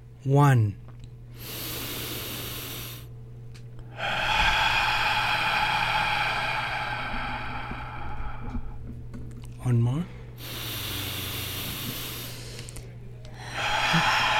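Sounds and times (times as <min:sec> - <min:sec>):
speech: 0:00.2 - 0:00.8
long hissing exhale during a guided breathing exercise: 0:01.3 - 0:03.1, 0:03.9 - 0:08.9, 0:10.4 - 0:14.3
deep breath in during a guided breathing exercise: 0:01.4 - 0:03.1, 0:03.8 - 0:08.9, 0:10.1 - 0:14.3.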